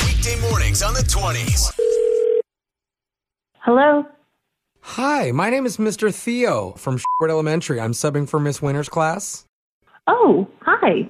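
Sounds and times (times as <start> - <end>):
speech: 0.2 - 2.0, 3.7 - 4.2, 4.8 - 11.0
telephone ringback tone as a prank phone call connects: 1.8 - 2.4.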